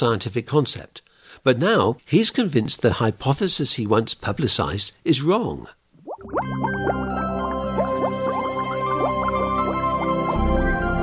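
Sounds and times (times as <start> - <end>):
speech: 0.0 - 7.0
liquid bubbling with rising glugs and pops: 5.9 - 10.9.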